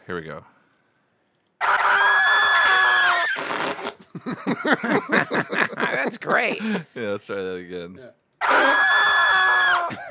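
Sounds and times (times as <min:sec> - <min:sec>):
speech: 0:00.1 - 0:00.6, 0:04.2 - 0:08.8, 0:09.9 - 0:10.0
loud high-pitched scream with choppy vocal bursts: 0:01.6 - 0:04.0, 0:08.4 - 0:10.0
laughter: 0:02.7 - 0:07.2, 0:08.5 - 0:10.0.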